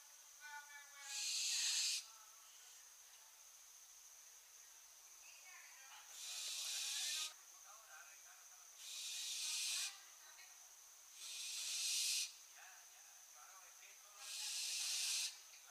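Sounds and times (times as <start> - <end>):
barn owl hissing screeches, Tyto alba: 1.0 - 2.1, 6.1 - 7.4, 8.8 - 10.0, 11.1 - 12.4, 14.2 - 15.4.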